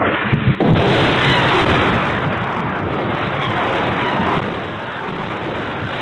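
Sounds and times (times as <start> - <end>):
Grad rocket explosions: 0.0 - 5.9.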